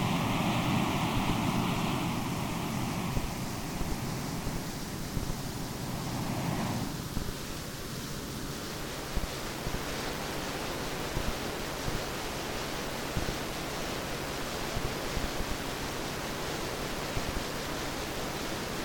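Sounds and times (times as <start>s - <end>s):
ocean surf: 0.0s - 18.8s
pink noise adjusted for typical hearing losses: 0.0s - 18.8s.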